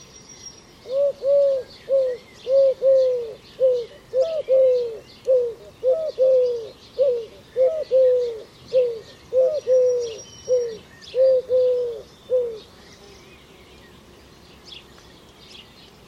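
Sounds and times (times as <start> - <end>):
faint high chirps from other birds: 0.0 - 16.0
bird cooing with soft low hollow notes: 0.8 - 13.3.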